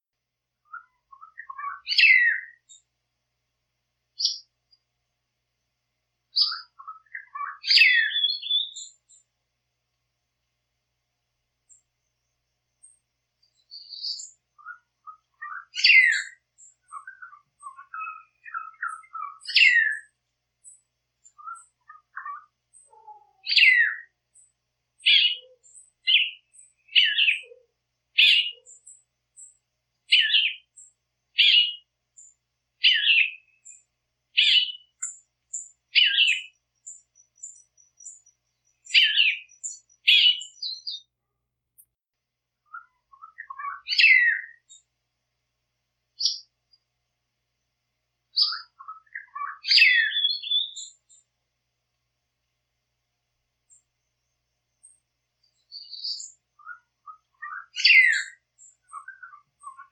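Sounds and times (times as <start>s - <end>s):
weaver bird singing: 0.6s - 2.9s, 4.2s - 4.8s, 6.3s - 9.3s, 12.8s - 41.1s, 42.7s - 44.9s, 46.2s - 46.8s, 48.3s - 51.3s, 54.7s - 59.9s.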